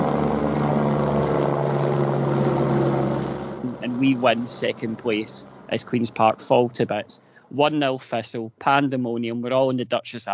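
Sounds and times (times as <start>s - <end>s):
helicopter engine and rotor droning overhead changing direction: 0.0s - 7.4s
speech: 3.9s - 10.3s.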